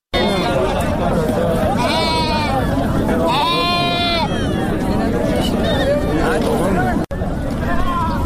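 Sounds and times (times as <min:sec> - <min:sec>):
crowd chatter at a livestock market: 0:00.1 - 0:08.2
sheep bleating at a livestock market: 0:01.8 - 0:02.6, 0:03.2 - 0:04.3.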